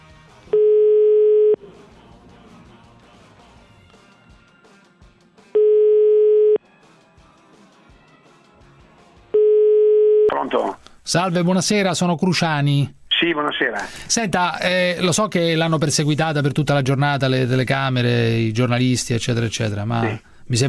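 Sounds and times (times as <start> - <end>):
ringback tone of an outgoing telephone call: 0.6 - 1.6, 5.6 - 6.6, 9.4 - 10.3
speech: 11.1 - 20.6.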